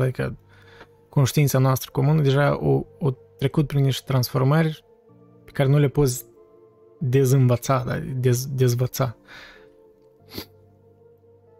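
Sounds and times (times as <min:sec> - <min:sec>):
speech: 0:00.0 - 0:00.4, 0:01.2 - 0:04.9, 0:05.5 - 0:06.3, 0:07.0 - 0:09.5, 0:10.3 - 0:10.5
soft breathy intake: 0:09.2 - 0:10.6
person sneezing: 0:10.3 - 0:10.6.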